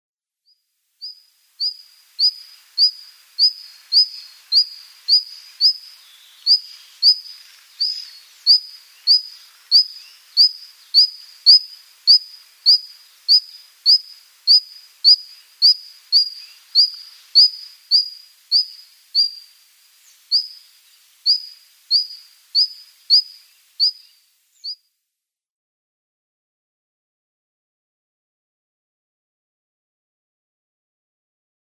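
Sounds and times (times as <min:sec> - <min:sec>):
Red-flanked Bluetail calls: 0:01.0 - 0:24.8.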